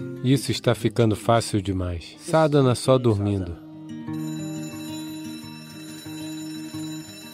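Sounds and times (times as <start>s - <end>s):
speech: 0.2s - 3.6s
alarm clock ringing with rapid electronic beeps: 4.0s - 7.3s.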